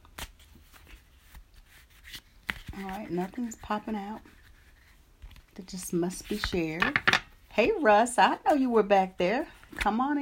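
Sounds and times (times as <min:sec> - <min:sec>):
picture cards being shuffled and drawn: 0:00.0 - 0:07.2
speech: 0:02.8 - 0:04.4, 0:05.6 - 0:10.2.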